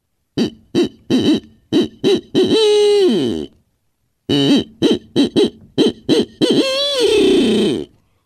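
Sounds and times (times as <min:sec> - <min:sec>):
barred owl eight-note hoot made by a person huffing into a hand call: 0:00.4 - 0:03.5, 0:04.3 - 0:07.9.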